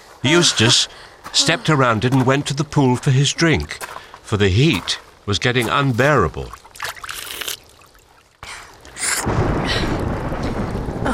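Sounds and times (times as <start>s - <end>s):
speech: 0.2s - 6.6s
rain pouring: 0.2s - 11.1s
thunder rumbling: 8.8s - 11.1s.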